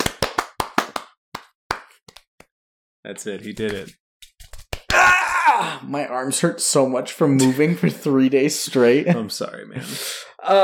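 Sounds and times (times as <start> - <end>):
hands clapping: 0.0 - 2.5, 3.5 - 5.1
speech: 3.0 - 4.0, 5.0 - 10.6.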